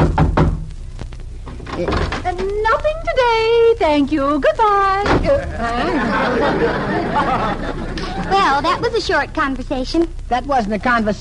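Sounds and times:
knocks on a wooden door: 0:00.0 - 0:00.7
low hum: 0:00.0 - 0:11.1
speech: 0:01.8 - 0:11.1
laughter: 0:05.3 - 0:08.9.

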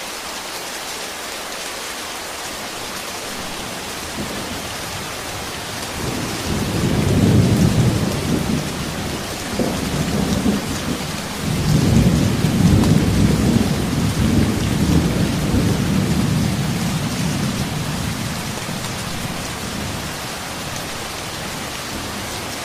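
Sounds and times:
heavy rain falling: 0:00.0 - 0:22.6
low rolling rumbles of thunder: 0:04.1 - 0:20.2.

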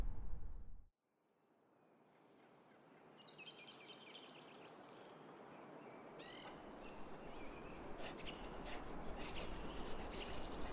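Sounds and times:
birds chirping: 0:02.9 - 0:10.7.

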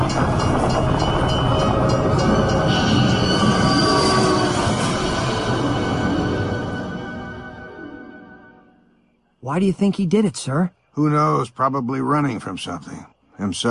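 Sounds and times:
train wheels squealing on railroad tracks: 0:00.0 - 0:07.0
train roaring along railroad tracks: 0:00.0 - 0:07.2
speech: 0:09.5 - 0:13.7.

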